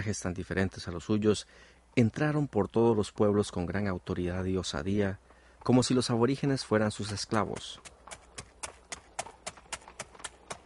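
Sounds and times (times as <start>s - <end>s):
speech: 0.0s - 8.0s
hooves of horses ridden by Spaniards clip-clopping: 5.6s - 10.6s.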